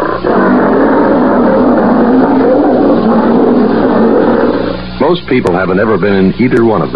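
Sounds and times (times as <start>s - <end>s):
lion roaring: 0.0s - 5.0s
speech: 5.1s - 6.9s.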